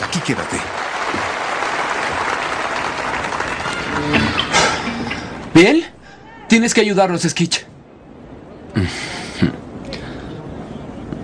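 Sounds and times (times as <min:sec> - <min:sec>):
audience applause welcoming a new band: 0:00.0 - 0:05.3
speech: 0:00.3 - 0:00.8, 0:05.6 - 0:05.9, 0:06.5 - 0:07.7, 0:08.7 - 0:09.6.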